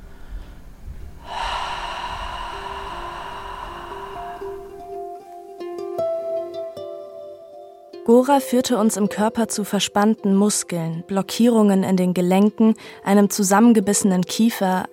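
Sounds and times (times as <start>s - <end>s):
long ujjayi exhale through a narrowed glottis: 0.0s - 7.8s
faint sustained musical tones: 1.3s - 14.9s
speech: 8.1s - 14.9s.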